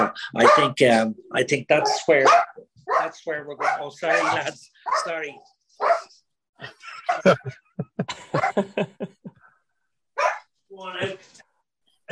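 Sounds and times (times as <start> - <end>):
dogs barking excitedly in high-pitched yips: 0.0 - 1.0, 1.7 - 6.2, 7.0 - 7.4, 8.4 - 8.7, 10.2 - 10.5
speech: 0.1 - 9.4, 10.8 - 11.4
laughter: 6.6 - 9.6.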